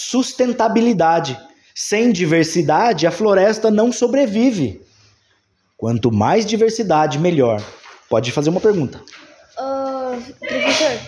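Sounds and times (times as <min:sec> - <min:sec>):
speech: 0:00.0 - 0:04.9, 0:05.8 - 0:11.0
loud sneeze: 0:10.4 - 0:11.0.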